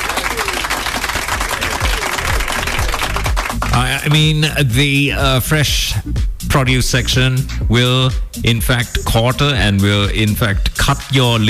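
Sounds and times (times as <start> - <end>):
round of applause: 0.0 - 4.3
speech: 4.0 - 11.4.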